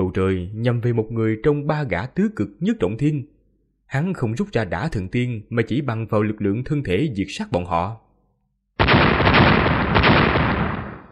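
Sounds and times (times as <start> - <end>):
speech: 0.1 - 3.3, 3.9 - 8.0
explosions: 8.8 - 11.1.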